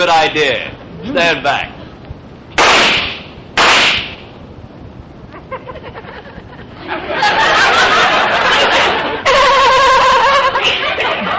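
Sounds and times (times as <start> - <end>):
speech: 0.0 - 1.8
gunshots from a fired gun: 2.6 - 4.3
laughter: 5.3 - 11.3.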